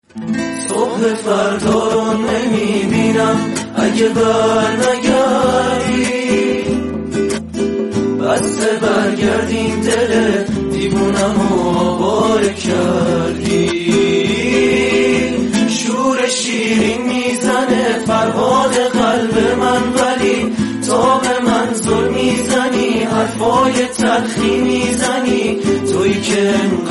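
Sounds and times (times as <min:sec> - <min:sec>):
Iranian group music performance with guitar: 0:00.0 - 0:26.8.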